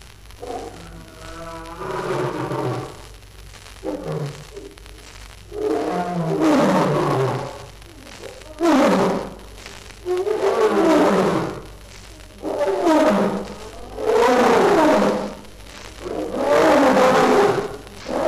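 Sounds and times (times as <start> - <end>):
lion roaring: 0.4 - 3.0, 3.8 - 4.8, 5.5 - 7.7, 8.4 - 9.4, 10.0 - 11.8, 12.4 - 18.2.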